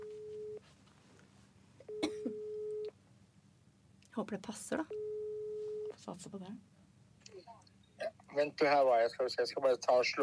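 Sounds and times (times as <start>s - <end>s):
telephone ringback tone as a call is placed: 0.0s - 0.6s, 1.9s - 2.9s, 4.9s - 5.9s
speech: 4.2s - 5.0s, 6.0s - 6.7s, 8.4s - 10.2s.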